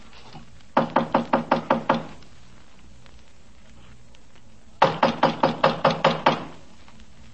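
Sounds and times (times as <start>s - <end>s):
police knocking on a door: 0.7s - 2.2s, 4.8s - 6.5s.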